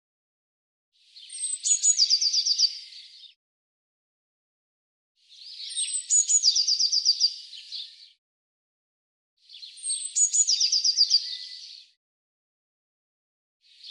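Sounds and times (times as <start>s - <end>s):
Eurasian blue tit singing: 1.1s - 3.4s, 5.3s - 8.2s, 9.5s - 12.0s.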